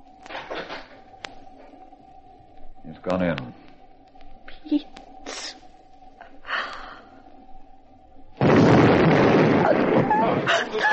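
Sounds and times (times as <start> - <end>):
low steady hum: 0.0 - 10.9
speech: 2.8 - 3.6
faint breathy sound: 6.2 - 7.3
loud explosion outside rolling into a sustained roar: 8.4 - 10.7.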